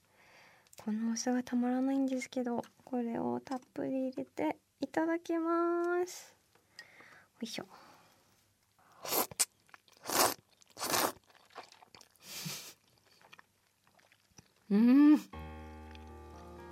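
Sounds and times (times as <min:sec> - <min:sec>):
speech: 0:00.8 - 0:06.4, 0:07.4 - 0:07.8, 0:14.7 - 0:15.4
chewing thick noodles: 0:08.9 - 0:14.7
slurping thick noodles in beef-bone and chicken broth with vinegar: 0:09.0 - 0:14.7
short tonal sound effect: 0:15.2 - 0:16.6
sustained tone: 0:15.3 - 0:16.6.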